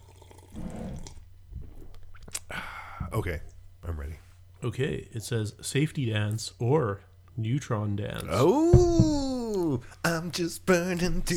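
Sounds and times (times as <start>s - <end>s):
quiet sips of beer with a wet slurp: 0.0s - 2.5s
person swallowing: 0.4s - 3.1s
speech: 3.2s - 11.3s.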